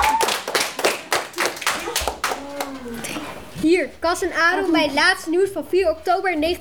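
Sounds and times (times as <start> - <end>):
several people clapping: 0.0 - 3.5
speech: 3.6 - 6.6.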